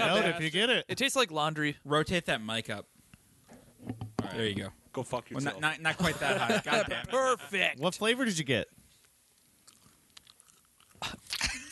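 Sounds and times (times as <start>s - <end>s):
speech: 0.0s - 2.9s, 3.8s - 8.8s
laughter: 5.9s - 7.7s
wet chewing of candy: 9.3s - 11.6s.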